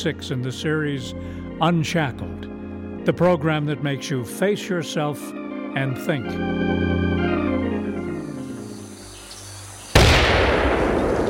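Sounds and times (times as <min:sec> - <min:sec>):
speech: 0:00.0 - 0:02.4, 0:03.0 - 0:08.0
sustained tonal music: 0:00.0 - 0:09.5
mortar fire blast in a radio drama: 0:09.9 - 0:11.2.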